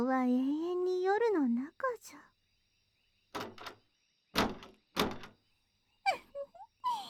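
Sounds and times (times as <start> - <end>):
speech: 0.0 - 2.3
heavy thunks of a room's door being tried: 3.4 - 3.8, 4.4 - 5.4.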